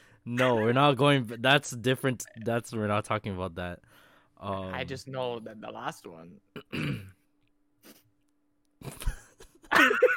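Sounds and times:
speech: 0.2 - 7.1
person clearing throat: 6.6 - 7.2.

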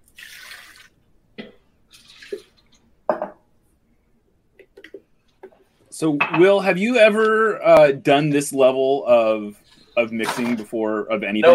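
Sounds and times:
liquid poured into a blender: 0.0 - 1.0
speech: 6.0 - 11.5.

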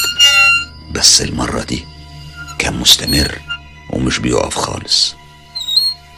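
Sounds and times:
door creaking open: 0.0 - 0.8, 2.2 - 3.7, 5.5 - 6.1
speech: 1.0 - 2.0, 2.6 - 5.2.

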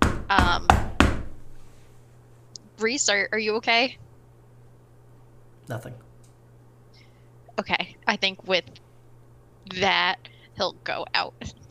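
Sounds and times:
urgent firm knocking on a door: 0.0 - 1.4
speech: 0.3 - 0.7, 2.8 - 4.0, 5.7 - 6.1, 7.6 - 8.8, 9.7 - 11.6.

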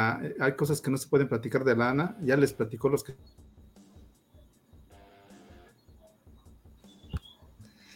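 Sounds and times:
speech: 0.0 - 3.5
choppy garbled video-call audio cutting in and out: 0.0 - 7.9
sharp click: 7.1 - 7.3.

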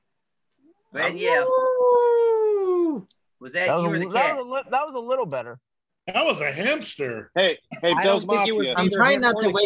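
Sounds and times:
speech: 0.8 - 2.0, 3.0 - 9.6
person imitating a wolf howl: 1.4 - 3.0.

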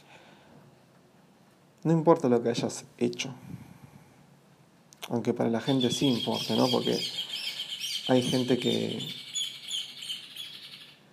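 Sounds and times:
speech: 1.8 - 3.6, 5.1 - 7.3, 8.1 - 9.2
small bird chirping: 5.6 - 11.1.

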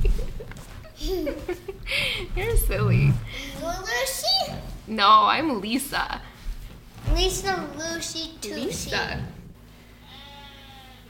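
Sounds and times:
low steady hum: 0.0 - 11.0
speech: 1.1 - 1.7, 4.9 - 6.3, 7.2 - 9.4
sheep bleating outdoors in the yard: 10.0 - 11.0.

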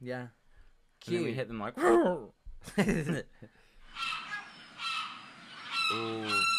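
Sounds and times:
speech: 0.0 - 0.4, 1.0 - 4.1, 5.9 - 6.5
seagull squawking: 4.0 - 6.5.

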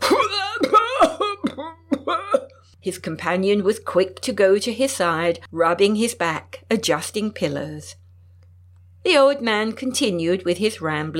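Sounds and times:
person imitating an old man coughing in bed: 0.0 - 2.7
speech: 2.8 - 8.0, 9.0 - 11.1.

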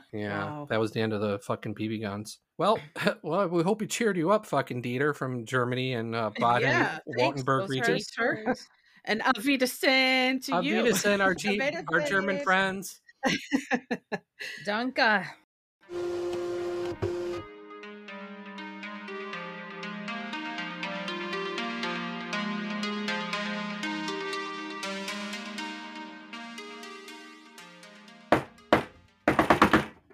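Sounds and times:
speech: 0.1 - 16.2
laughter: 2.6 - 8.6, 10.5 - 14.8
melodic music: 5.3 - 8.6, 9.2 - 12.8, 17.4 - 29.2
man banging hard on a door: 28.3 - 30.0.

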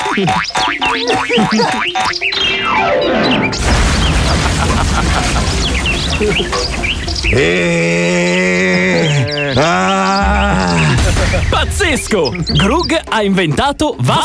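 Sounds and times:
laughter: 0.0 - 2.2, 4.1 - 6.6, 7.4 - 11.8
springy cartoon boings: 0.0 - 11.6
speech: 0.2 - 14.2
clattering debris: 3.5 - 9.1, 10.5 - 13.0
loud cartoon crashing impact to the ground: 3.6 - 8.9, 10.5 - 12.3.

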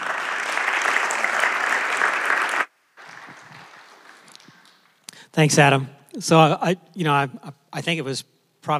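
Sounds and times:
crowd applauding for a speaker: 0.0 - 5.0
speech: 5.4 - 8.7.

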